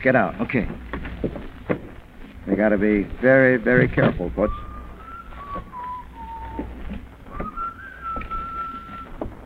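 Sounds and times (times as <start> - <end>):
speech: 0.0 - 1.4, 2.5 - 4.7
low rumble: 0.0 - 9.4
man whistling a slow tune: 4.4 - 9.2.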